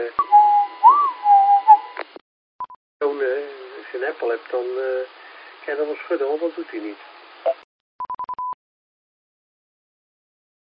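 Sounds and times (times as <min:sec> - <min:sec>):
person whistling: 0:00.2 - 0:02.0
speech: 0:04.0 - 0:07.6.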